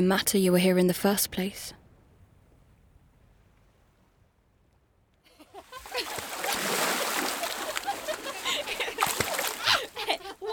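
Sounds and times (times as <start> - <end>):
speech: 0.0 - 1.8
laughter: 5.3 - 10.5
canoe splashing and sloshing through water: 5.6 - 10.5.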